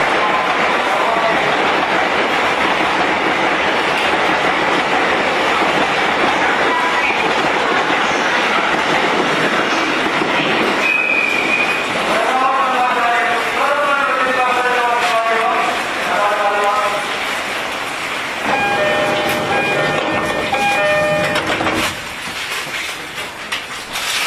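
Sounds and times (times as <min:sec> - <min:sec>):
E231 series train running: 0:00.0 - 0:24.2.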